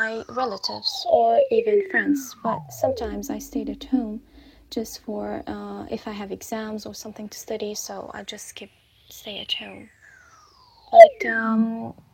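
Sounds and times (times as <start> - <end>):
manual phaser effect: 0.2 - 5.0, 10.0 - 11.9.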